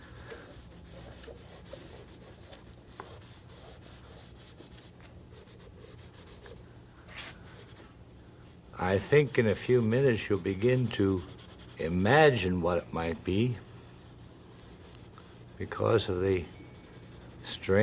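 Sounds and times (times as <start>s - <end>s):
drawing on paper with scratching and rubbing strokes: 0.2s - 6.6s, 8.8s - 12.5s, 13.1s - 17.8s
speech: 8.8s - 13.7s, 15.6s - 16.6s, 17.6s - 17.8s.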